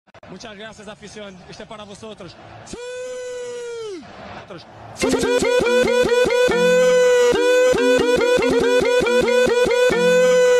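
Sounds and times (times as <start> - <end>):
remix ringtone: 5.0 - 10.5.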